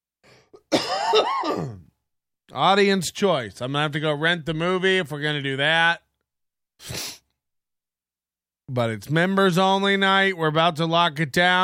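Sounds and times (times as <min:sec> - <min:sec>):
person clearing throat with a raspy cough: 0:00.4 - 0:02.0
speech: 0:01.1 - 0:01.8, 0:02.5 - 0:06.0, 0:06.8 - 0:07.2, 0:08.7 - 0:11.6.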